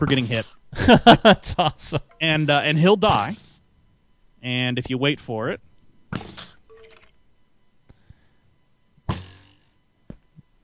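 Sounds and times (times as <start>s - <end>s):
speech: 0.0s - 3.5s, 4.4s - 6.3s
laughter: 0.7s - 2.2s
skeleton firing arrows in a video game: 3.1s - 3.5s, 6.1s - 6.6s, 9.1s - 9.7s.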